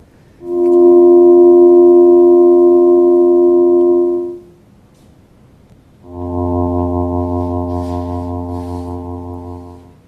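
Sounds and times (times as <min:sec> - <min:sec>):
sustained electronic chords sonified from variable star pulsation: 0:00.4 - 0:04.5, 0:06.1 - 0:10.0.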